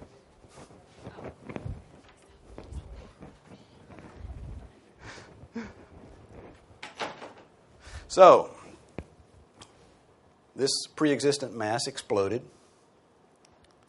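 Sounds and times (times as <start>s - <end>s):
shuffling and rustling: 0.0s - 10.0s
door opening and shutting with dull knocks and rattles: 6.8s - 7.5s
speech: 8.1s - 8.6s, 10.6s - 12.6s.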